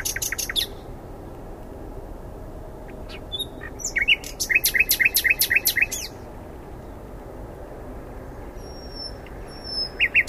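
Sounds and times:
common nightingale Luscinia megarhynchos song: 0:00.0 - 0:01.0, 0:02.7 - 0:07.2, 0:08.4 - 0:10.2.

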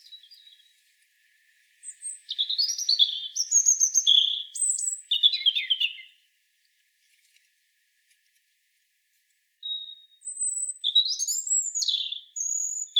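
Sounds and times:
European robin Erithacus rubecula singing: 0:00.0 - 0:00.7, 0:01.8 - 0:06.2, 0:09.6 - 0:12.9.

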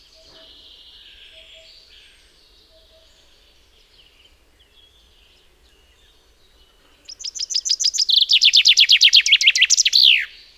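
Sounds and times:
common chaffinch Fringilla coelebs singing: 0:00.0 - 0:10.5.

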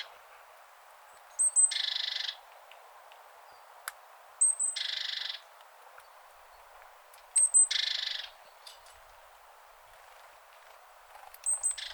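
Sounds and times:
great tit Parus major calls: 0:01.2 - 0:02.5, 0:04.4 - 0:08.7, 0:11.2 - 0:11.9.

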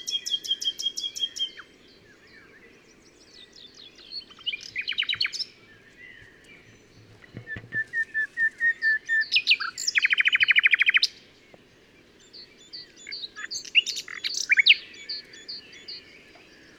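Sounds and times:
Common nightingale (Luscinia megarhynchos) song: 0:00.0 - 0:16.7.

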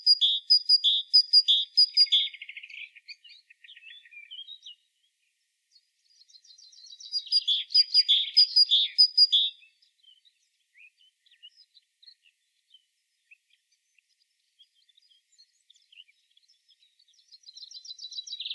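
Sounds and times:
Great tit Parus major calling: 0:00.0 - 0:02.4, 0:06.9 - 0:09.6.

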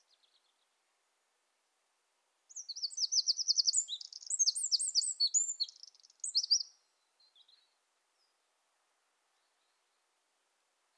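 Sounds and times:
Eurasian wren Troglodytes troglodytes song: 0:02.5 - 0:06.7.

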